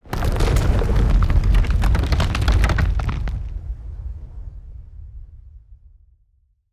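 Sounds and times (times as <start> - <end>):
building shaking: 0.1 - 3.5.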